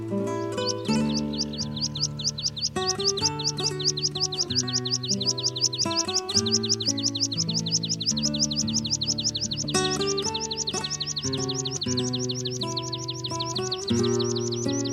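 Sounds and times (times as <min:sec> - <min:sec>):
meadow pipit singing: 0:00.0 - 0:14.9
sustained slowly shifting musical tones: 0:00.0 - 0:14.9.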